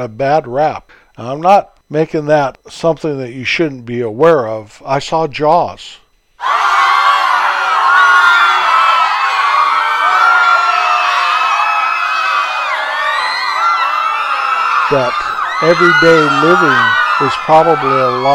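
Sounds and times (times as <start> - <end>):
speech: 0.0 - 6.8, 14.9 - 18.3
crowd screaming: 6.4 - 18.3.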